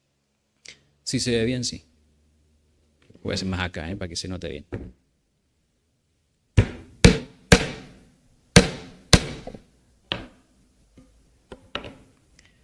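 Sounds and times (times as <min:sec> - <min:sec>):
speech: 0:01.1 - 0:01.9, 0:03.2 - 0:05.0
hammer driving a nail into wood: 0:06.6 - 0:08.0, 0:08.6 - 0:10.3.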